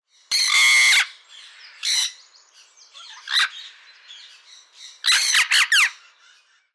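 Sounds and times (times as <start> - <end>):
orange-winged amazon Amazona amazonica calls: 0.3 - 2.2, 3.0 - 3.8, 5.0 - 6.7.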